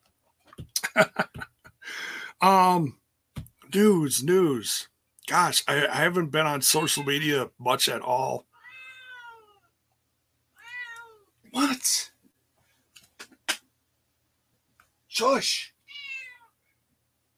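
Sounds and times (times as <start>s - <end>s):
laughter: 0.8s - 1.8s
speech: 1.0s - 1.3s, 2.4s - 3.0s, 3.7s - 8.5s, 15.4s - 15.7s
cat meowing in high harmonic calls: 8.5s - 9.7s, 10.6s - 11.3s, 15.8s - 16.5s.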